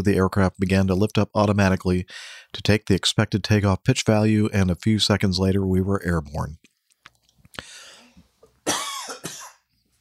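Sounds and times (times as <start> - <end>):
speech: 0.0 - 6.7
person coughing from an almond stuck in the throat: 8.6 - 9.6.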